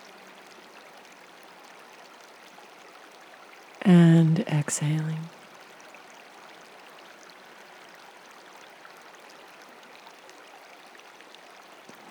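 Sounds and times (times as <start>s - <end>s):
babbling of a flowing stream: 0.0s - 12.1s
speech: 3.9s - 5.4s.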